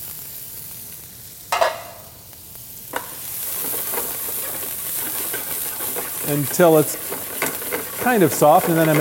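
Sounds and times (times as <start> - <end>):
onion sautéing in a pan over medium-high heat: 0.0 - 8.9
stirring knocks: 3.0 - 8.9
speech: 6.3 - 7.0, 8.0 - 8.9.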